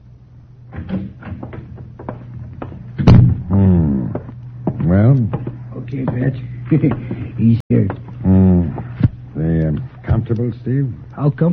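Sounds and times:
living room door opening with a muffled creak and clatter: 0:00.7 - 0:02.2
soft footsteps of a man: 0:00.7 - 0:09.2
sharp thud: 0:03.0 - 0:03.5
man's brief murmured voice: 0:03.5 - 0:04.3, 0:07.0 - 0:09.7
speech: 0:06.0 - 0:07.6, 0:10.4 - 0:11.5.

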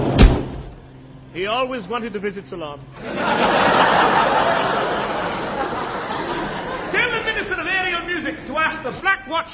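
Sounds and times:
door thudding shut: 0:00.2 - 0:00.7
speech: 0:01.4 - 0:04.9, 0:08.6 - 0:09.4
laughter: 0:03.0 - 0:09.3.

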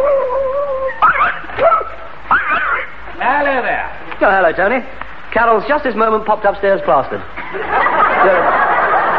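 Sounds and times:
dog whimpering: 0:00.0 - 0:02.9
speech: 0:03.2 - 0:08.6
laughter: 0:07.4 - 0:09.1.

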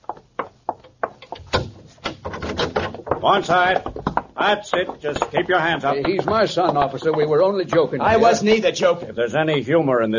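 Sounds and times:
door scraping open: 0:01.5 - 0:03.1
speech: 0:03.2 - 0:10.1.

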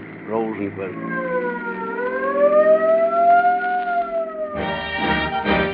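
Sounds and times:
speech: 0:00.3 - 0:01.7, 0:02.4 - 0:03.1
toy junior police siren whistle: 0:00.8 - 0:05.6.

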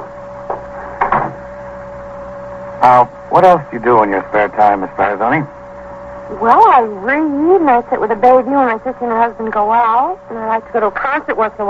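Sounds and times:
steady hum: 0:00.0 - 0:11.6
wooden door being pushed shut: 0:01.0 - 0:01.4
speech: 0:02.8 - 0:05.6, 0:06.3 - 0:11.6.

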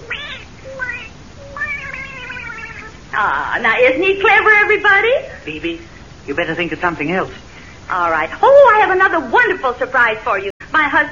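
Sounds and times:
little pet cat meowing: 0:00.0 - 0:03.0
speech: 0:03.1 - 0:11.1.

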